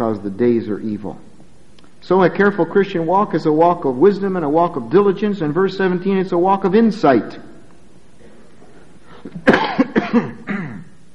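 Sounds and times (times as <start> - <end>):
speech: 0.1 - 1.3, 2.0 - 7.5, 9.2 - 10.4
person coughing harshly: 9.2 - 11.0.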